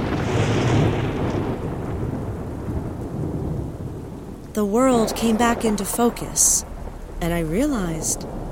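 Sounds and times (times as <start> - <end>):
pouring rain: 0.0 - 8.5
thunder crack from a nearby lightning strike: 0.0 - 8.5
speech: 4.6 - 8.4.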